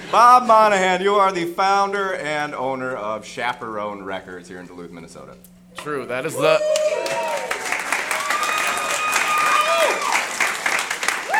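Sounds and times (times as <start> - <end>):
speech: 0.1 - 7.6
audience whoops: 6.4 - 10.4, 11.1 - 11.3
audience applause in Duluth Minnesota: 6.4 - 11.3.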